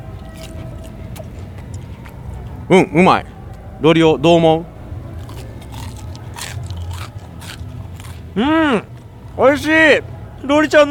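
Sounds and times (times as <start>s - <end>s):
chewing Japanese fried chicken karaage: 0.0s - 2.6s, 5.0s - 9.1s
steady low rumbling noise: 0.0s - 10.9s
crunchy bites into Japanese fried chicken karaage from a food stall: 0.2s - 2.2s, 5.2s - 8.3s
speech: 2.7s - 4.7s, 8.4s - 10.9s.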